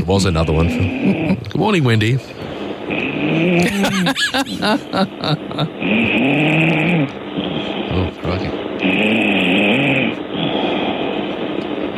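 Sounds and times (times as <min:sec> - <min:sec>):
speech: 0:00.0 - 0:02.5, 0:03.3 - 0:09.4
person snoring loudly: 0:02.9 - 0:04.8, 0:05.8 - 0:08.0, 0:08.8 - 0:11.1
laughter: 0:03.6 - 0:05.8.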